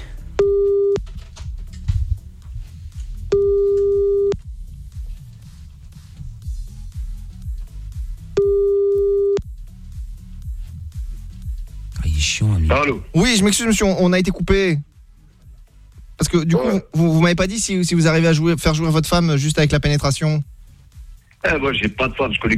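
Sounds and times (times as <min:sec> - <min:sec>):
continuous low rumbling background: 0:00.0 - 0:16.2
telephone busy signal while redialling: 0:00.4 - 0:01.0, 0:03.3 - 0:04.4, 0:08.4 - 0:09.4
speech: 0:12.8 - 0:14.9, 0:16.2 - 0:20.6, 0:21.4 - 0:22.5.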